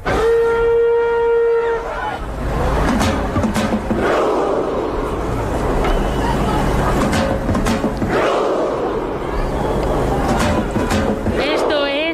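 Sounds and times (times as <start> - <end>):
long sustained horn-like tone: 0.0 - 2.2
football crowd shouting in unison at the World Cup: 1.5 - 7.2, 7.9 - 12.1.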